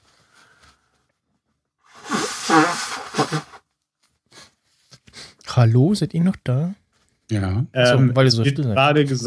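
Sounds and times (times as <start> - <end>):
person blowing nose with a wet honk: 1.9 - 3.6
short soft snorts and sniffs: 1.9 - 3.6
speech: 5.6 - 9.2.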